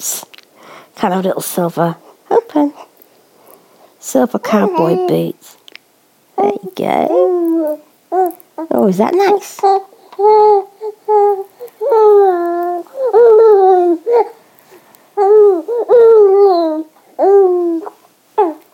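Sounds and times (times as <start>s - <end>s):
speech: 1.0s - 2.8s, 4.0s - 5.6s, 6.4s - 14.4s, 15.2s - 17.9s
baby babbling and gurgling while being fed: 4.5s - 5.3s, 6.4s - 14.4s, 15.2s - 18.6s.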